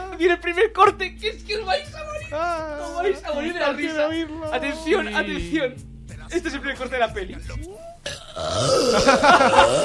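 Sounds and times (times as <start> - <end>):
speech: 0.2 - 9.8
laughter: 2.3 - 5.7, 8.8 - 9.8
long loud burp: 8.1 - 9.8.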